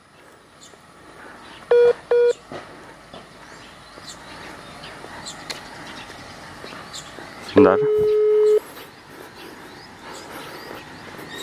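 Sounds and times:
touch-tone telephone dialing beeps: 1.7 - 2.4, 7.8 - 8.6
speech: 7.6 - 8.2.

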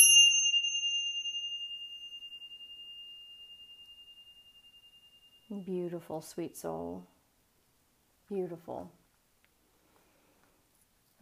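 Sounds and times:
single bright chime struck and ringing: 0.0 - 5.8
speech: 5.5 - 7.1, 8.3 - 9.0.

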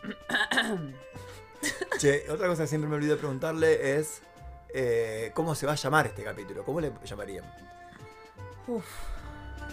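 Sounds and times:
raspy throat clearing: 0.0 - 1.0
rough coughing fit: 0.0 - 2.0
speech: 0.6 - 1.1, 2.0 - 7.8, 8.7 - 9.1.

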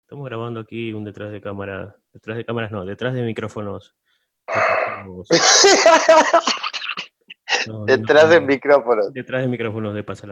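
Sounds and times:
speech: 0.1 - 6.7, 7.6 - 10.2
loud heavy breathing at the microphones in a recording session: 4.0 - 5.1
laughter: 5.3 - 7.7.

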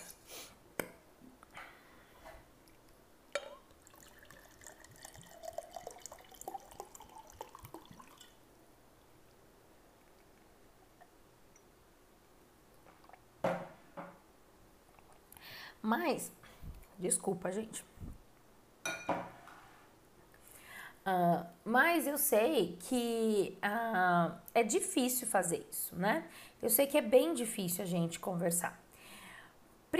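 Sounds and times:
sharp clinks and knocks of glassware: 3.3 - 4.4, 18.9 - 19.3
water running from a tap into a drinking glass: 3.3 - 8.4
speech: 15.8 - 16.4, 17.0 - 18.1, 21.1 - 28.8.

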